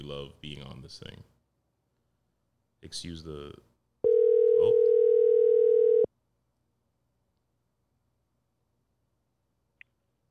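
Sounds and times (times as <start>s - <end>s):
speech: 0.0s - 1.4s, 2.8s - 3.7s
phone ringing tone as an electronic buzz: 4.0s - 6.1s.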